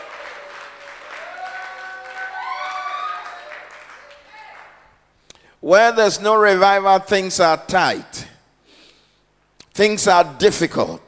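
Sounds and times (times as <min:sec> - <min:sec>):
people shouting and cheering: 0:00.0 - 0:04.6
congregation clapping: 0:00.0 - 0:04.9
speech: 0:05.6 - 0:08.3, 0:09.8 - 0:11.0.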